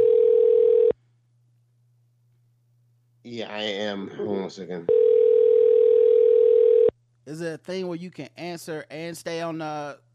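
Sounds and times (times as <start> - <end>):
telephone dial tone of an outgoing call: 0.0 - 0.9, 4.9 - 6.9
speech: 3.3 - 5.1, 7.2 - 10.0.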